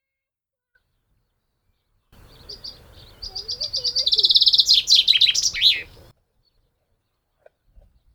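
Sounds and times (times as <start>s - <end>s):
Common chaffinch Fringilla coelebs song: 2.2s - 6.1s.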